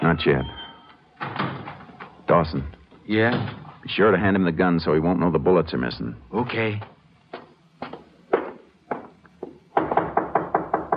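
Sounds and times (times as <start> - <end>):
speech: 0.1 - 0.6, 2.3 - 6.9
sharp knocks on a door: 8.3 - 10.9.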